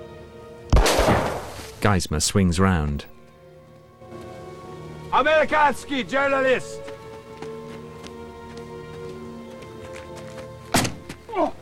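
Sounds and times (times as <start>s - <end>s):
speech: 1.8s - 3.1s, 5.2s - 6.8s
scuffling: 6.8s - 11.5s
rifle butt striking a man: 10.7s - 11.2s.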